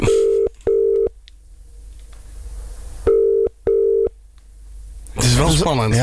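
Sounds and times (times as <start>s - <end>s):
ringback tone of an outgoing telephone call: 0.0s - 1.1s, 3.1s - 4.1s
speech: 5.4s - 6.0s.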